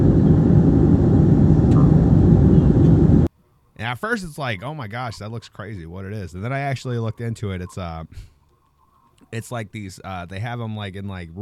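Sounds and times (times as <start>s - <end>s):
small propeller plane engine droning in flight: 0.0s - 3.3s
speech: 3.9s - 8.3s, 9.3s - 11.3s.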